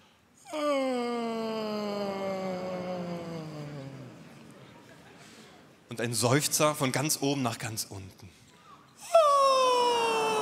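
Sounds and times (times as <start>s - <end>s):
hearty voiced yawn during a vocal warm-up: 0.4s - 4.3s, 9.0s - 10.4s
speech: 6.0s - 8.4s.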